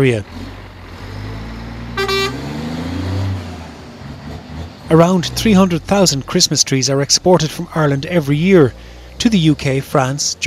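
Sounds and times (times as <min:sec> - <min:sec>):
speech: 0:00.0 - 0:00.4, 0:04.9 - 0:10.4
large truck with a loaded trailer pulling away: 0:00.0 - 0:10.4
short bright truck horn toot: 0:02.0 - 0:02.6.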